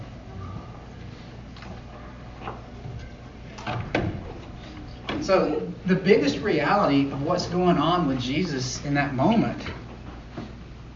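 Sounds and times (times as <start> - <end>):
quiet hum: 0.0 - 10.9
door pushed closed and latching: 3.5 - 5.4
speech: 5.3 - 9.8.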